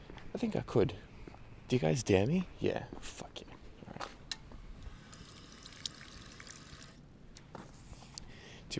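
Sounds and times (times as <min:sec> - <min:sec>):
speech: 0:00.4 - 0:01.1, 0:01.7 - 0:04.0
water running from a drinking fountain spout: 0:05.1 - 0:07.0.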